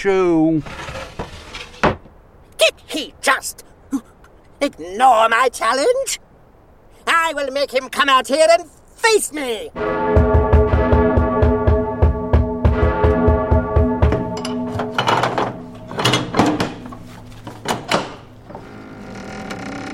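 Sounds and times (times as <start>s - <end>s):
speech: 0.0s - 0.9s, 3.2s - 3.7s, 4.6s - 6.2s, 7.1s - 10.2s
bell ringing: 9.8s - 17.2s.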